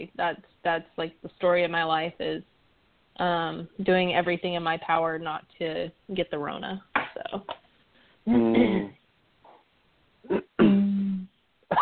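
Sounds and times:
speech: 0:00.0 - 0:02.5, 0:03.2 - 0:07.6, 0:08.2 - 0:09.0
person coughing: 0:08.3 - 0:08.9, 0:10.3 - 0:11.0.

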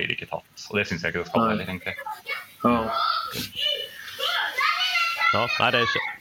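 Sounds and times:
speech: 0:00.0 - 0:03.7, 0:05.3 - 0:06.1
two children at home chattering and calling out: 0:01.3 - 0:06.1
children squealing: 0:02.7 - 0:06.1.

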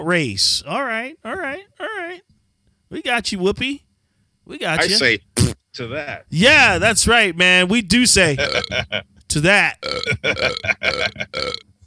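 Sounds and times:
speech: 0:00.0 - 0:01.7, 0:03.0 - 0:03.8, 0:04.5 - 0:11.8
loud croaky burp: 0:08.4 - 0:08.7, 0:09.8 - 0:11.8.

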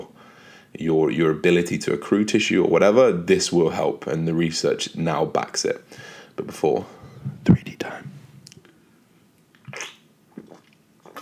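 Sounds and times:
speech: 0:00.7 - 0:08.0
person sipping a drink: 0:09.5 - 0:11.1
swallowing: 0:09.6 - 0:11.1.

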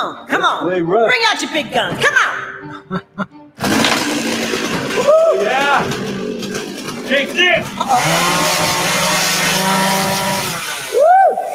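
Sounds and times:
speech: 0:00.0 - 0:03.4, 0:07.1 - 0:09.0
power tool revving loudly: 0:03.6 - 0:11.0.

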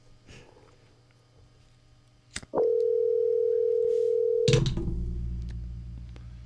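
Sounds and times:
outgoing phone call ringing tone: 0:02.6 - 0:04.6
answering machine picking up the line: 0:04.5 - 0:04.9.

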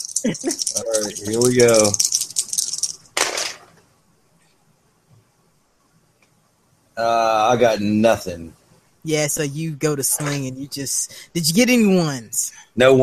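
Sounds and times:
box shaken hard with loose contents rattling: 0:00.0 - 0:03.7
speech: 0:00.2 - 0:02.2, 0:07.0 - 0:13.0.

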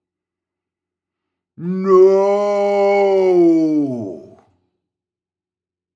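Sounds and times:
speech: 0:01.6 - 0:02.0
ghostly monster scream: 0:01.6 - 0:04.4.

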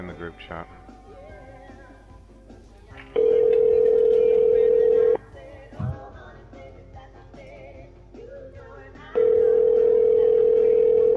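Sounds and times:
speech: 0:00.0 - 0:00.9
telephone ringback tone on an outgoing call: 0:03.2 - 0:05.2, 0:09.2 - 0:11.1.

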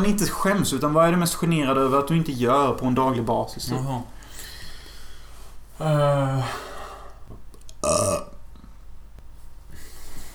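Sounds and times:
speech: 0:00.0 - 0:04.1, 0:05.8 - 0:06.7
quiet room noise: 0:00.0 - 0:10.3
person burping into the microphone: 0:07.8 - 0:08.4.

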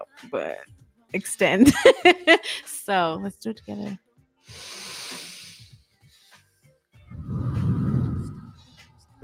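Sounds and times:
speech: 0:00.1 - 0:04.8
long hissing breath drawn in through the nose: 0:04.4 - 0:06.4, 0:07.1 - 0:08.9
louder deeper rushing exhale: 0:04.5 - 0:05.8, 0:07.2 - 0:08.6.

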